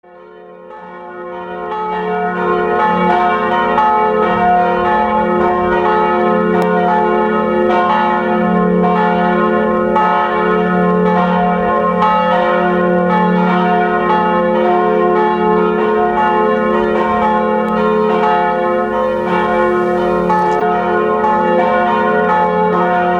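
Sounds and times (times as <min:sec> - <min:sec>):
church bells ringing: 0:00.0 - 0:23.1.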